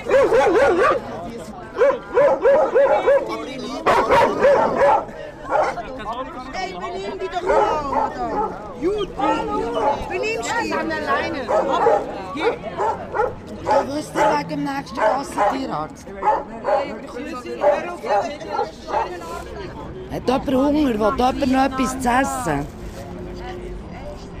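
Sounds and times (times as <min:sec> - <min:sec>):
several dogs barking and yipping: 0:00.0 - 0:05.8, 0:07.4 - 0:17.0
about 20 people chattering on church steps: 0:00.0 - 0:24.3
speech: 0:20.3 - 0:22.8.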